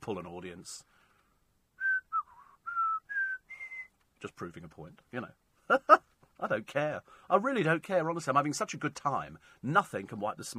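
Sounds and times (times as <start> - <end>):
speech: 0.0 - 1.0, 4.2 - 10.5
man whistling a tune: 1.8 - 4.0.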